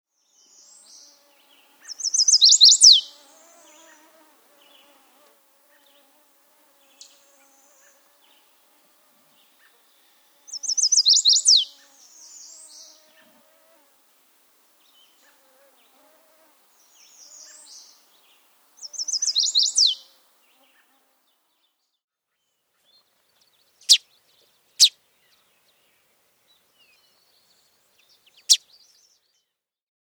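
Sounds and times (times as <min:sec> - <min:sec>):
Chestnut-sided Warbler: 0:01.8 - 0:03.2, 0:10.5 - 0:12.7, 0:18.8 - 0:20.0.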